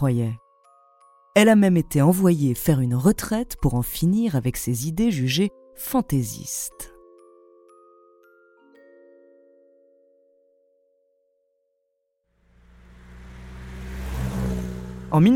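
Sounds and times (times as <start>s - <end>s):
speech: 0.0s - 0.4s, 1.4s - 6.9s, 15.1s - 15.3s
sustained chime-like musical notes: 6.4s - 11.5s
old car engine starting, revving and pulling away: 12.5s - 15.3s.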